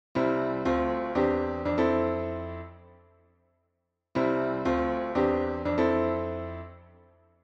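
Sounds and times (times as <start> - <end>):
gospel piano chord progression: 0.2 - 2.9, 4.2 - 6.9.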